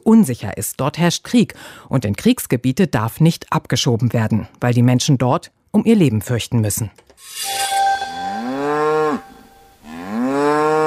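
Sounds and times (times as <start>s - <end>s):
speech: 0.1s - 7.8s
cow mooing: 8.2s - 10.8s.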